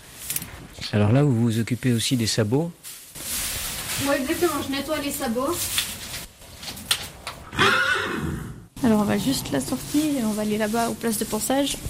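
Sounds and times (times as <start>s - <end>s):
speech: 0.9s - 2.8s, 4.0s - 5.8s, 8.9s - 11.8s
brief shuffling in a horse stall: 1.6s - 6.9s, 8.9s - 11.8s
horse whinnying in its stall: 7.4s - 9.5s
horse snorting in its stall: 7.4s - 9.9s.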